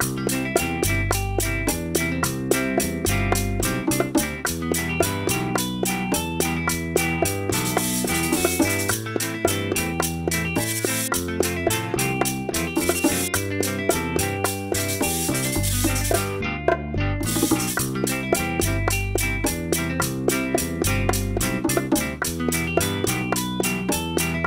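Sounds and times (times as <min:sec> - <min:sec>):
bachata major-key rhythm pattern: 0:00.0 - 0:24.4.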